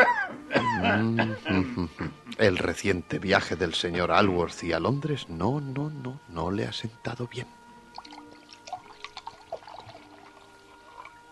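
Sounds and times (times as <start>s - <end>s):
faint tonal hum: 0.0s - 11.3s
speech: 0.8s - 7.6s
water pouring into a glass: 7.9s - 11.3s.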